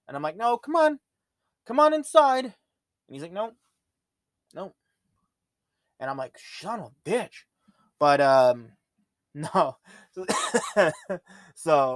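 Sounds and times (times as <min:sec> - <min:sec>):
speech: 0:00.1 - 0:03.6, 0:04.5 - 0:04.8, 0:06.0 - 0:11.9
person coughing: 0:10.2 - 0:11.0.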